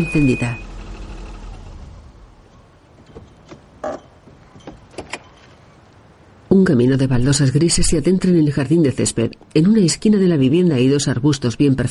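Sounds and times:
speech: 0.0s - 0.7s, 6.6s - 11.9s
car engine rumble: 0.0s - 6.4s.

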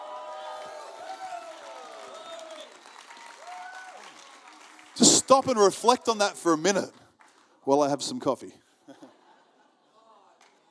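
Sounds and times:
whoops and shouted voices: 0.0s - 4.1s
crowd cheering and applauding: 0.0s - 7.4s
speech: 5.0s - 7.0s, 7.6s - 8.6s.

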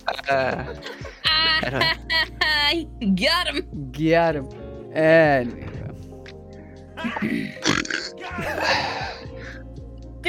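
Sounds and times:
laughter: 0.0s - 2.4s
speech: 0.0s - 5.7s, 7.0s - 9.1s
long loud gurgling burp: 7.2s - 8.2s.

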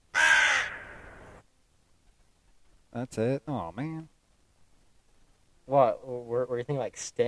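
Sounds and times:
crow cawing: 0.1s - 1.4s
speech: 3.0s - 4.2s, 5.7s - 7.2s.

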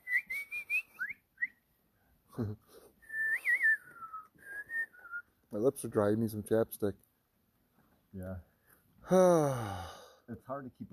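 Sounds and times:
person whistling melodic phrases: 0.0s - 1.6s, 3.0s - 5.3s
speech: 2.4s - 2.8s, 5.5s - 7.0s, 8.1s - 8.5s, 9.1s - 10.9s
quick breathy burst: 9.0s - 10.3s.

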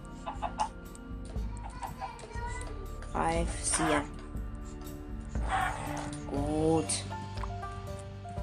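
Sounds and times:
steady low hum of video game music: 0.0s - 8.4s
video game chickens clucking while attacked by the player: 0.2s - 0.7s
speech: 3.2s - 4.2s, 6.0s - 7.1s.

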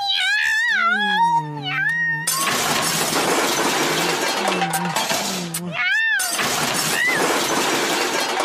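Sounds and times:
cat yowling: 0.0s - 2.7s, 5.7s - 7.3s
shattering and crashing clatter: 2.3s - 5.4s, 6.2s - 8.4s.

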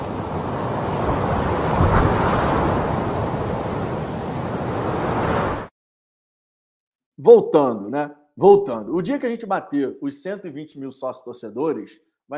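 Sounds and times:
wind blowing: 0.0s - 5.7s
speech: 7.2s - 12.3s.

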